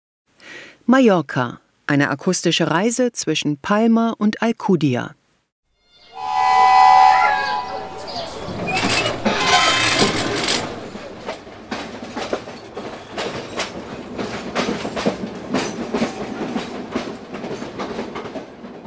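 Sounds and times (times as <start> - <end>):
speech: 0.9 - 5.2
whistle-like tone: 5.9 - 9.0
almost 100-year-old train carriage with wooden benches rolling on rails on Mallorca: 7.3 - 18.8
wheels clacking over track joints: 7.7 - 18.5.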